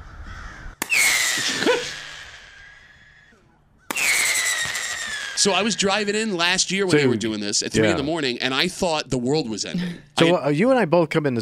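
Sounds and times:
crows cawing: 0:00.0 - 0:04.1
pyrotechnic dispersal bangs: 0:00.8 - 0:03.0, 0:03.9 - 0:06.6
falling whistle-like squeal after pyrotechnic bangs: 0:00.9 - 0:06.1
speech: 0:01.4 - 0:02.0, 0:05.4 - 0:11.4.

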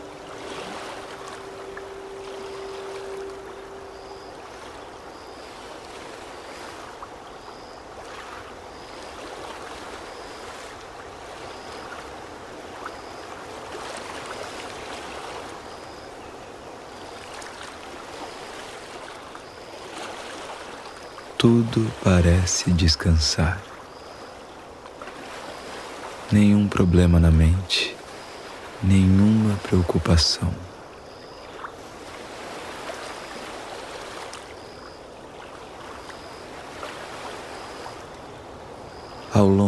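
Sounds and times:
brief low hum: 0:00.0 - 0:05.2
small wind-stirred waves lapping against a calm lakeshore: 0:00.0 - 0:39.6
speech: 0:21.4 - 0:23.7, 0:26.3 - 0:28.0, 0:28.8 - 0:30.7, 0:39.3 - 0:39.6.

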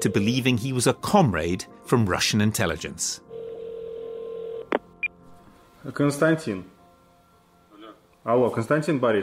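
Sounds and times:
speech: 0:00.0 - 0:03.3, 0:05.8 - 0:06.7, 0:08.2 - 0:09.2
telephone dial tone: 0:03.3 - 0:04.8.

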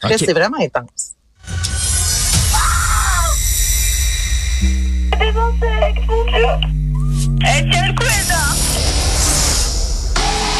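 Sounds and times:
speech: 0:00.0 - 0:02.0, 0:04.6 - 0:08.8
harsh noisy background: 0:01.5 - 0:10.5
woman screaming and crying out in panic: 0:02.5 - 0:03.4
loud steady electronic drone: 0:03.4 - 0:10.5.

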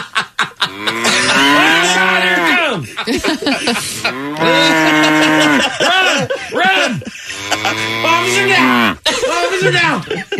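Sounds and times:
laughter: 0:00.0 - 0:10.3
cow mooing: 0:00.7 - 0:02.6, 0:04.0 - 0:05.7, 0:07.3 - 0:09.0
speech: 0:03.0 - 0:05.8, 0:06.9 - 0:10.3.

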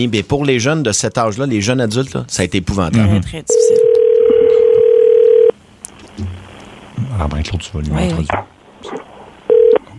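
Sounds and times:
speech: 0:00.0 - 0:03.9, 0:07.2 - 0:09.0
telephone dial tone on a phone line: 0:03.8 - 0:05.5, 0:09.5 - 0:09.9.

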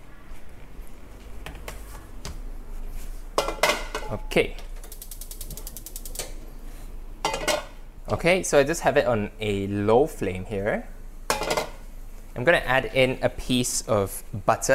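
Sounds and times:
speech: 0:04.1 - 0:04.7, 0:08.1 - 0:10.9, 0:12.4 - 0:14.7
rapid ticking clicks: 0:04.8 - 0:06.2
cheap non-stick pan clattering on a gas stovetop: 0:07.2 - 0:07.7, 0:11.3 - 0:11.8.

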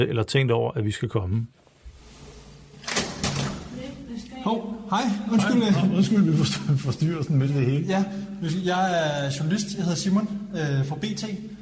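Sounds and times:
speech: 0:00.0 - 0:01.6, 0:04.4 - 0:11.6
front door creak: 0:02.8 - 0:03.7.

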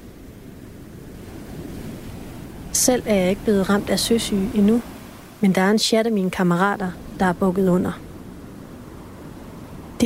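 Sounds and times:
ocean waves washing around a ship: 0:00.0 - 0:10.0
wind noise: 0:00.0 - 0:10.0
speech: 0:02.8 - 0:08.0.

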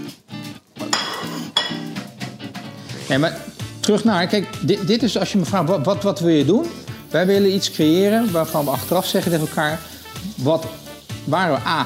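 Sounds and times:
ceramic plates clattering as they are stacked: 0:00.9 - 0:01.9
speech: 0:03.1 - 0:11.8.

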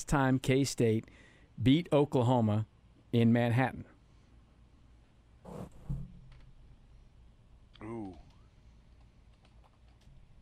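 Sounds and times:
speech: 0:00.0 - 0:03.9
typing on a computer keyboard: 0:09.3 - 0:10.1.

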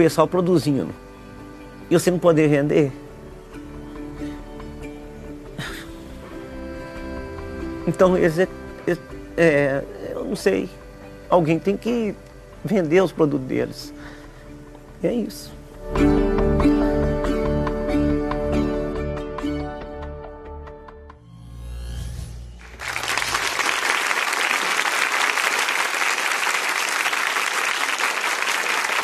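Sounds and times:
speech: 0:00.0 - 0:01.1, 0:01.9 - 0:03.0, 0:07.9 - 0:14.2, 0:15.0 - 0:16.2
music: 0:00.0 - 0:24.3
loud dense applause from a sizeable crowd: 0:22.6 - 0:29.0.

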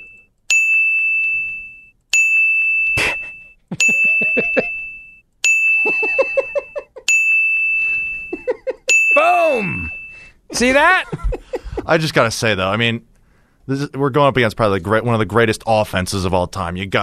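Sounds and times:
bright bell dings: 0:00.0 - 0:10.3
people laughing: 0:05.8 - 0:07.0, 0:10.9 - 0:12.0
speech: 0:10.6 - 0:13.1, 0:13.7 - 0:17.0.

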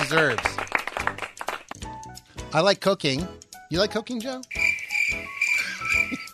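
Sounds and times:
speech: 0:00.1 - 0:00.6, 0:02.5 - 0:04.6
crickets chirping: 0:04.5 - 0:06.3.

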